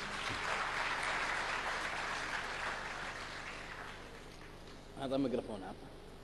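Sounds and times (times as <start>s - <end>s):
crowd applauding: 0.0s - 4.7s
speech: 5.0s - 6.1s.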